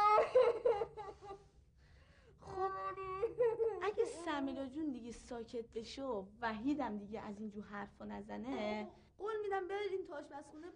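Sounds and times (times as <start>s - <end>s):
child whimpering and crying: 0.0s - 1.4s, 2.4s - 4.4s
speech: 4.4s - 10.7s.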